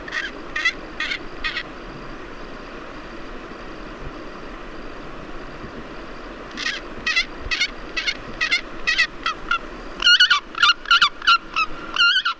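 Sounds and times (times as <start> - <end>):
Pallas's fish eagle giving harsh honking calls: 0.0 - 1.6, 6.6 - 12.3
steady low outdoor hum: 0.0 - 12.3.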